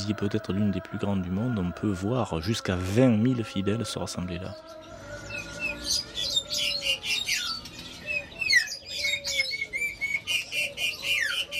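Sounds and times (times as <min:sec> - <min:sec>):
speech: 0:00.0 - 0:04.9
many caged songbirds chirping and whistling at a bird market in Indonesia: 0:00.0 - 0:11.5
sharper squawks of caged birds: 0:05.6 - 0:11.5.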